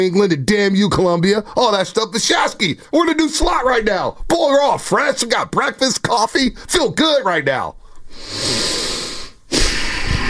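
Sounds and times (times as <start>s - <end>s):
speech: 0.0s - 8.8s
breathing into a microphone: 7.8s - 10.2s.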